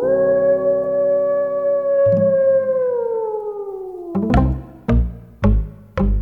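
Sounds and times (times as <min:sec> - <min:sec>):
wolf howling: 0:00.0 - 0:04.3
sharp drum-like thumps: 0:04.2 - 0:06.2.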